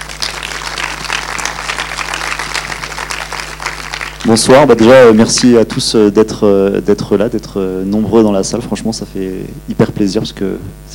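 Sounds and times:
audience applauding in cinema: 0.0s - 5.1s
speech: 4.2s - 10.9s.

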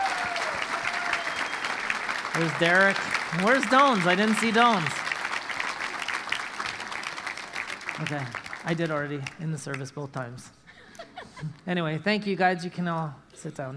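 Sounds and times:
audience applause at a church service: 0.0s - 9.4s
speech: 2.4s - 5.0s, 8.0s - 10.6s, 11.4s - 13.7s.

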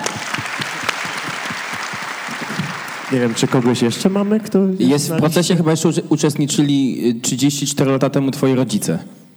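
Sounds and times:
audience applause: 0.0s - 4.6s
speech: 3.1s - 9.2s.

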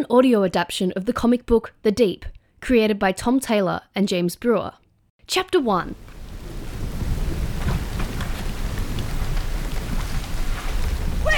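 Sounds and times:
speech: 0.0s - 6.1s
storm at sea roaring: 5.7s - 11.3s
deep thunder rumbling in a storm at sea: 6.0s - 11.3s
heavy rain hissing in a storm at sea: 6.0s - 11.3s.

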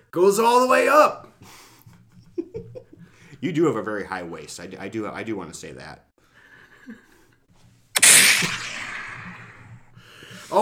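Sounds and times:
speech: 0.1s - 1.6s, 3.4s - 6.1s
gunshot sound effect with long echo: 8.0s - 9.9s.

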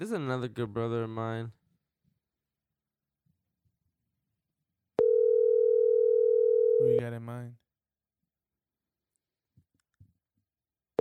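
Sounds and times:
speech: 0.0s - 1.6s, 7.0s - 7.6s
telephone dial tone while placing a call: 5.0s - 6.9s.

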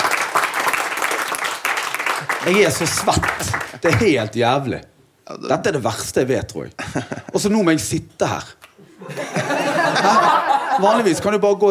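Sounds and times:
audience applause for a performer on stage: 0.0s - 4.0s
speech: 2.4s - 9.2s, 10.0s - 11.6s
laughter: 6.8s - 7.4s, 8.8s - 11.4s.

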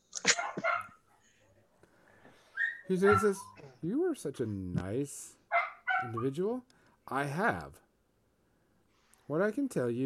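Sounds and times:
dog barking: 0.2s - 1.1s, 2.5s - 3.6s, 5.5s - 6.3s
speech: 2.9s - 5.4s, 6.0s - 7.8s, 9.3s - 10.0s.

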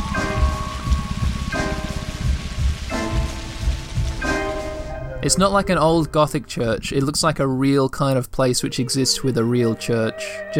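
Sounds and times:
rain falling steadily on surfaces: 0.0s - 7.4s
speech: 5.2s - 10.5s.

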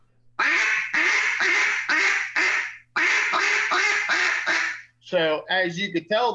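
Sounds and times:
duck call imitating a duck with clipped quacks: 0.4s - 4.9s
speech: 5.1s - 6.3s.

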